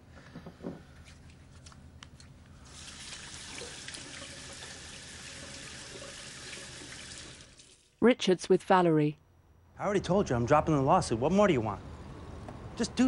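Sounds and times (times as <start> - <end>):
tap water running into a washroom sink as hands are washed: 2.7 - 7.9
speech: 8.0 - 9.2, 9.8 - 11.9, 12.8 - 13.0.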